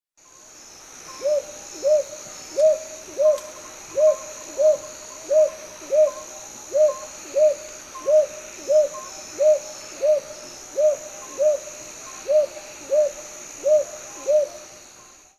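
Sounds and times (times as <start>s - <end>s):
brown hawk-owl calling in Okinawa: 1.2s - 14.6s.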